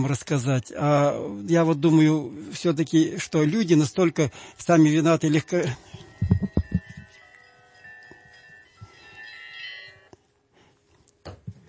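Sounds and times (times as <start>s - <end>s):
speech: 0.0s - 6.5s
mobile phone ringtone of chiming church bells: 2.0s - 10.1s
bumps and knocks: 6.2s - 7.1s.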